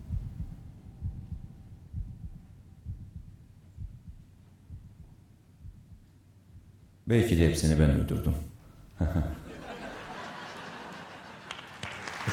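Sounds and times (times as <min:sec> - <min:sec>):
steady deep heartbeat thumping: 0:00.0 - 0:07.1
faint low hum: 0:00.0 - 0:12.3
speech: 0:07.1 - 0:09.4
laughter: 0:09.0 - 0:12.3.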